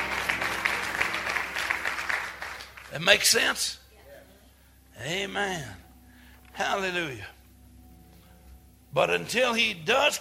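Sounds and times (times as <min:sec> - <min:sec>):
church congregation clapping hands during worship: 0:00.0 - 0:03.6
speech: 0:02.9 - 0:03.8, 0:05.0 - 0:05.8, 0:06.6 - 0:07.4, 0:08.9 - 0:10.2.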